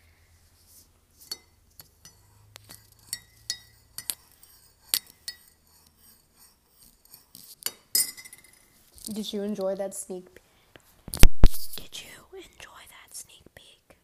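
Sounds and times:
spoon softly scraping in a cup: 0:01.2 - 0:09.2
spoon swirling and tapping inside a cup: 0:01.3 - 0:05.9, 0:07.1 - 0:08.6
speech: 0:09.1 - 0:10.4.

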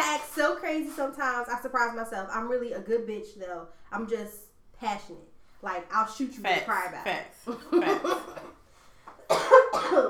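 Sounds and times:
speech: 0:00.2 - 0:08.4, 0:09.3 - 0:10.0
laughter: 0:07.4 - 0:08.5
harsh raspy throaty coughs: 0:08.0 - 0:08.6, 0:09.2 - 0:10.0.

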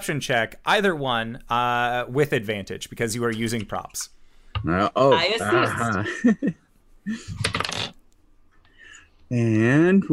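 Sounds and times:
speech: 0:00.0 - 0:07.6, 0:09.3 - 0:10.1
two hard plastic dice tumbling and rattling across a table: 0:07.4 - 0:08.0.

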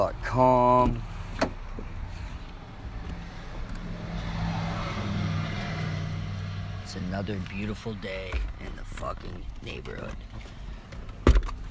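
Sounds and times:
speech: 0:00.0 - 0:01.1, 0:06.9 - 0:10.6
road traffic rumbling: 0:00.0 - 0:11.6
car passing: 0:01.0 - 0:09.2.

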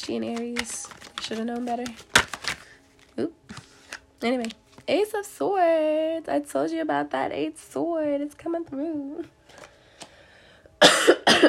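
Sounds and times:
speech: 0:00.0 - 0:02.2, 0:03.2 - 0:03.6, 0:04.2 - 0:09.4
quiet breath: 0:09.4 - 0:10.8
person coughing harshly: 0:10.8 - 0:11.4.

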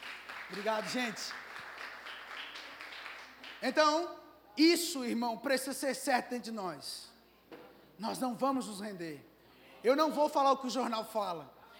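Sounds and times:
crowd applauding: 0:00.0 - 0:03.7
speech: 0:00.5 - 0:01.5, 0:03.6 - 0:07.1, 0:08.0 - 0:11.6.

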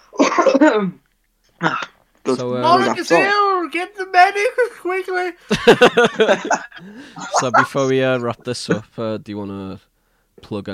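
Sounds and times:
person coughing raspy coughs: 0:00.1 - 0:00.8, 0:01.6 - 0:02.0, 0:06.5 - 0:07.8
speech: 0:00.6 - 0:01.0, 0:01.6 - 0:10.7
laughter: 0:05.5 - 0:08.8.

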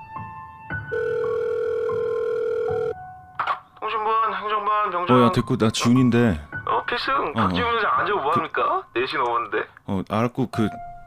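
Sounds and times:
telephone ringback tone on an outgoing call: 0:00.9 - 0:03.0
speech: 0:03.9 - 0:10.9.

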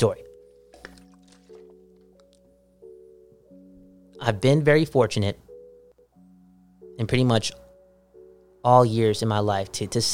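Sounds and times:
speech: 0:00.0 - 0:00.2, 0:04.2 - 0:05.4, 0:07.0 - 0:07.6, 0:08.6 - 0:10.1
water being poured or gulped: 0:00.7 - 0:01.8.

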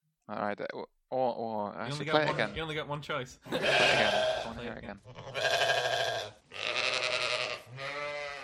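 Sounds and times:
speech: 0:00.3 - 0:06.1
sheep bleating: 0:03.5 - 0:08.4.

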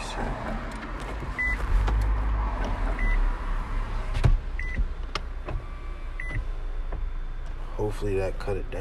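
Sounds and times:
car power window motor whirring while rolling up: 0:00.4 - 0:07.6
speech: 0:07.9 - 0:08.7.

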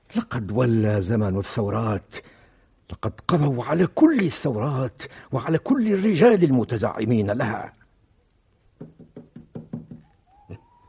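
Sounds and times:
speech: 0:00.1 - 0:07.8
knocking on a door: 0:08.8 - 0:10.1.

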